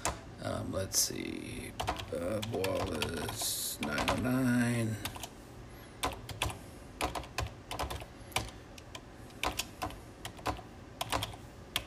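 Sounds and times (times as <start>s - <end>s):
speech: 0.4s - 5.2s
computer keyboard typing: 1.8s - 4.4s, 5.0s - 5.3s, 6.0s - 11.8s.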